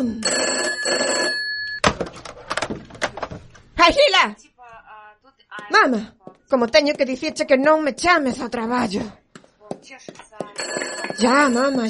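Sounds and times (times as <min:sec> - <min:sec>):
speech: 0:00.0 - 0:01.0, 0:03.9 - 0:04.5, 0:05.6 - 0:09.2, 0:09.8 - 0:11.8
old-fashioned telephone bell ringing loudly: 0:00.0 - 0:01.8, 0:10.6 - 0:11.8.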